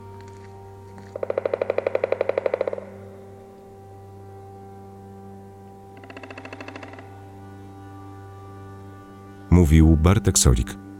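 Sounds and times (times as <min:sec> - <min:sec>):
steady low forest background in the Polish Tatra mountains: 0:00.0 - 0:10.9
loud rattling call: 0:01.1 - 0:03.3, 0:06.0 - 0:07.3
speech: 0:09.6 - 0:10.9.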